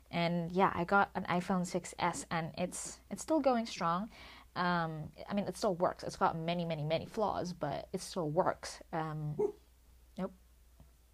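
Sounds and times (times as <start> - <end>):
speech: 0.1 - 9.6, 10.2 - 10.4
dog barks: 9.4 - 9.6.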